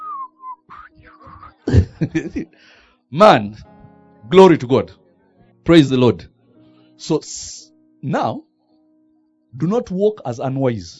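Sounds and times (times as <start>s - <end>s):
person whistling a short tune: 0.0s - 1.8s
laughter: 1.7s - 2.6s
speech: 2.0s - 3.7s, 4.3s - 5.0s, 5.6s - 6.3s, 7.0s - 8.5s, 9.5s - 10.9s.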